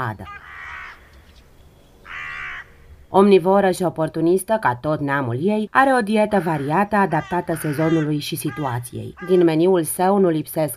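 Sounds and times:
speech: 0:00.0 - 0:00.4, 0:03.1 - 0:10.7
hooded crow cawing: 0:00.3 - 0:01.4, 0:02.0 - 0:02.9, 0:06.3 - 0:09.7.

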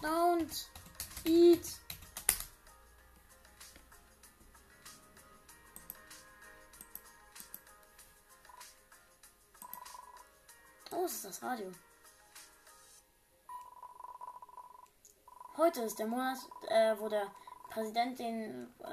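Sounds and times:
speech: 0:00.0 - 0:01.8, 0:11.1 - 0:11.9, 0:15.6 - 0:18.9
faint typing on a computer keyboard: 0:00.4 - 0:02.5, 0:09.6 - 0:10.1.

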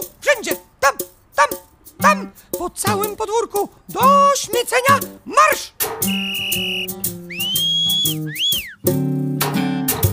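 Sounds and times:
bouncy rhythmic music: 0:00.0 - 0:10.1
speech: 0:00.4 - 0:00.6
shrill whistle blasts: 0:06.0 - 0:08.9.

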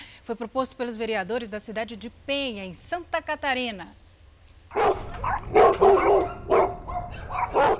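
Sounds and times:
speech: 0:00.3 - 0:04.0
dogs barking: 0:04.7 - 0:07.7.

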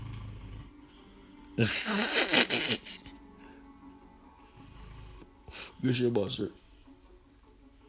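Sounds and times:
loud raspy snore: 0:00.0 - 0:00.8, 0:04.5 - 0:05.3
speech: 0:01.6 - 0:03.1, 0:05.6 - 0:06.6.

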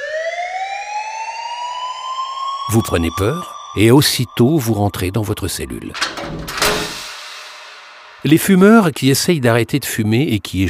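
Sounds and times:
loud alarm siren wailing with rising pitch: 0:00.0 - 0:06.0
speech: 0:02.7 - 0:06.8, 0:08.2 - 0:10.6.

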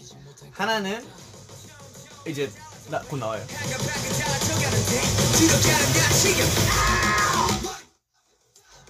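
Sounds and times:
dense loud song: 0:00.5 - 0:08.0
speech: 0:00.6 - 0:01.2, 0:02.2 - 0:07.4
shouted scream in a played song: 0:06.7 - 0:07.6.

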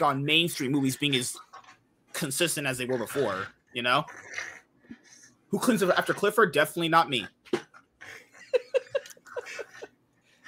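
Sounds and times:
speech: 0:00.0 - 0:01.5, 0:02.2 - 0:07.4
dog growling and snarling: 0:02.6 - 0:06.4
laughter: 0:08.1 - 0:10.0.

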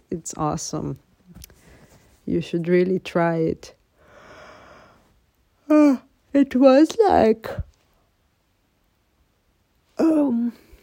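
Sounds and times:
speech: 0:00.1 - 0:01.1, 0:02.3 - 0:03.8, 0:05.7 - 0:07.7, 0:10.0 - 0:10.6
person yawning: 0:10.0 - 0:10.8.

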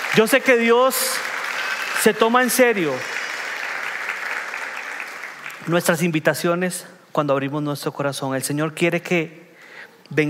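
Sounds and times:
crowd applauding: 0:00.0 - 0:06.0
speech: 0:00.1 - 0:01.4, 0:02.0 - 0:03.1, 0:05.6 - 0:09.4, 0:10.1 - 0:10.2.

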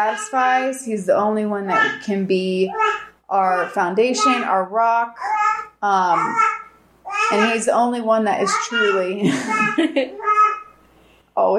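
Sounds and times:
speech: 0:00.0 - 0:06.5, 0:07.3 - 0:10.3, 0:11.4 - 0:11.5
young child babbling and talking: 0:02.7 - 0:04.4, 0:05.2 - 0:07.6, 0:08.5 - 0:10.7
laughter: 0:09.2 - 0:10.2.

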